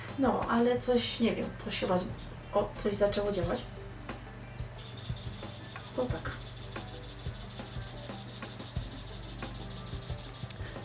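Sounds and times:
speech: 0.2s - 3.8s, 6.0s - 6.4s
wires vibrating inside a drinking glass: 4.6s - 10.8s
small clicks and ticks: 6.7s - 10.8s.

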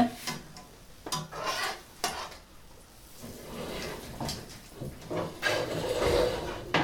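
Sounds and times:
pancakes frying in a pan: 1.0s - 4.0s
utensil clinking and scraping against the pan: 1.1s - 2.5s, 3.1s - 6.8s.

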